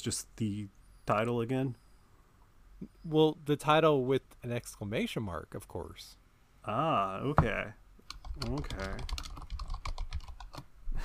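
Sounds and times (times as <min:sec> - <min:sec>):
speech: 0:00.0 - 0:01.8, 0:02.8 - 0:07.8, 0:08.4 - 0:09.2
rapid typing on a computer keyboard: 0:08.0 - 0:10.7.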